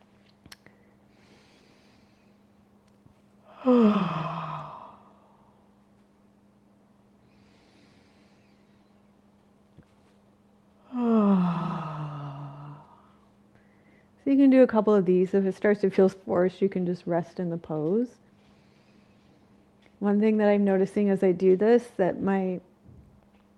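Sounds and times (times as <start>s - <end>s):
steady low hum: 0.0s - 23.5s
deliberate yawns with voiced exhale as a vagus nerve yawn exercise: 3.5s - 5.6s, 10.8s - 13.2s
speech: 3.6s - 4.2s, 14.4s - 18.2s, 20.0s - 22.7s.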